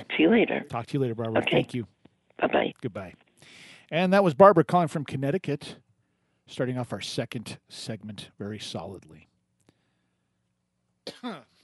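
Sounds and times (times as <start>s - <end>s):
speech: 0.2s - 5.8s, 6.5s - 9.3s, 11.1s - 11.5s
person coughing: 11.1s - 11.5s.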